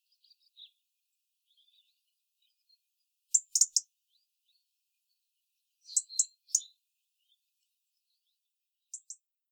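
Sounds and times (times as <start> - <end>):
faint soft European robin notes: 0.0 - 0.8, 1.4 - 9.2
European robin Erithacus rubecula giving sharp high ticking calls: 3.3 - 3.9, 5.8 - 6.8, 8.9 - 9.2.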